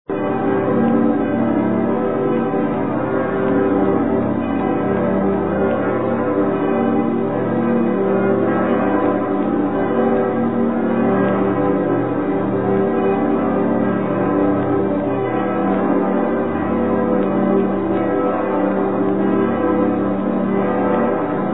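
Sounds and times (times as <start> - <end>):
cathedral bells ringing: 0.1 - 21.5.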